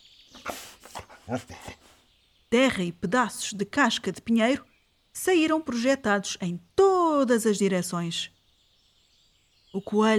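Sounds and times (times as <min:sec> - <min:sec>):
dog sniffing damp ground: 0:00.4 - 0:02.0
speech: 0:01.3 - 0:01.8, 0:02.5 - 0:08.4, 0:09.7 - 0:10.1.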